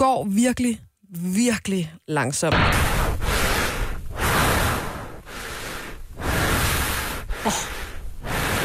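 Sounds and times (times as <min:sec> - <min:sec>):
speech: 0:00.0 - 0:03.0, 0:07.4 - 0:07.8
heavy rasping breathing of someone walking very slowly at almost 6,000 metres altitude: 0:02.8 - 0:08.6.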